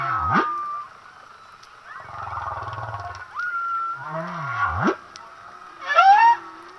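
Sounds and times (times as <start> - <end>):
humpback whale song with squeaky upsweeps and grunts: 0.0 - 1.0, 1.9 - 5.0, 5.6 - 6.7.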